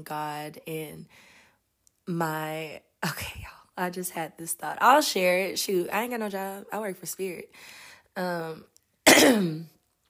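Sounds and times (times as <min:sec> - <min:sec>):
speech: 0:00.0 - 0:01.3, 0:02.1 - 0:09.8
person clearing throat: 0:09.1 - 0:09.7.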